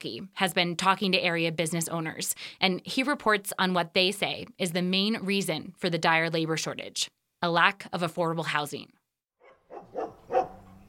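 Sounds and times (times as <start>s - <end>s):
speech: 0.0s - 9.0s
several dogs barking at a kennel: 9.4s - 10.8s.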